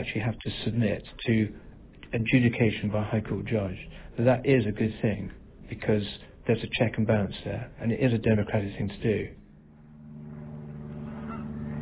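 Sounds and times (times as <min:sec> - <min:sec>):
speech: 0:00.0 - 0:09.4
low droning tone: 0:09.3 - 0:11.7
geese honking by a lake: 0:10.2 - 0:11.7.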